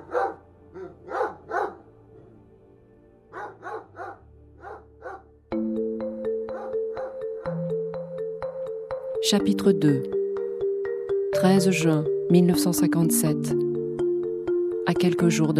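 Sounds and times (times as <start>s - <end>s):
dog barking: 0.0s - 1.9s, 3.3s - 5.3s, 6.5s - 7.2s
steady rhythmic music with sustained tones: 5.5s - 15.5s
speech: 9.2s - 10.2s, 11.4s - 13.7s, 14.9s - 15.5s.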